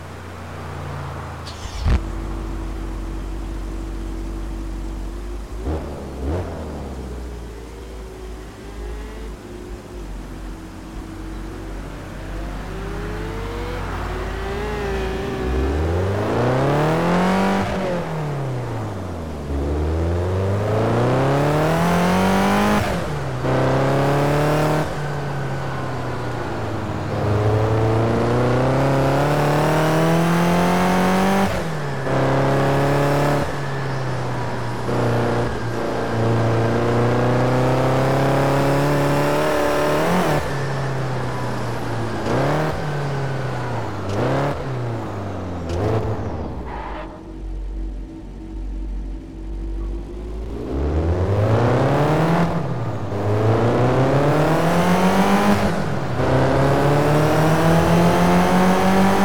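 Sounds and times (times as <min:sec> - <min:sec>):
1995 BMW M5 E34 engine: 0:00.0 - 0:59.2.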